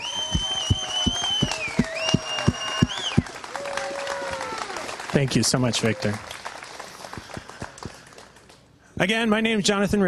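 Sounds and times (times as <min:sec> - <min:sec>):
church audience clapping: 0:00.0 - 0:08.7
regular thumping beat: 0:00.2 - 0:03.3
speech: 0:05.2 - 0:06.4, 0:09.0 - 0:10.0.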